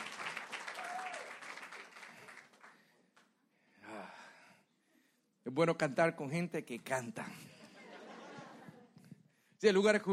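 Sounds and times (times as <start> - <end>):
cheer or whoop from the crowd: 0.0 - 2.4
audience applauding: 0.0 - 3.0
speech: 5.5 - 7.5, 9.6 - 10.1
laughter: 7.4 - 9.1.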